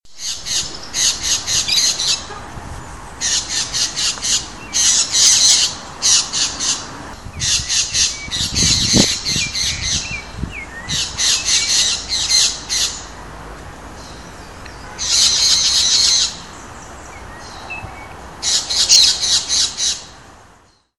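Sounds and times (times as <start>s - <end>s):
Brotogeris tirica calling: 0.1s - 13.3s, 14.0s - 20.2s.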